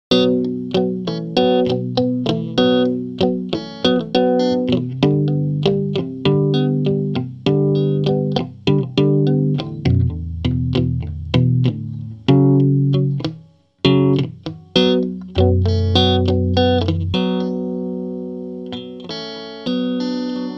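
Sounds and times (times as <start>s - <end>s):
muted clean chord progression through an amp head: 0.1s - 20.5s.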